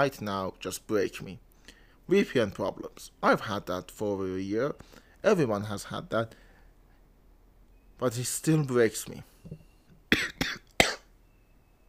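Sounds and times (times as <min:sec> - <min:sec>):
speech: 0:00.0 - 0:01.5, 0:02.1 - 0:06.4, 0:08.0 - 0:10.3
person coughing sharply and harshly: 0:10.1 - 0:11.1.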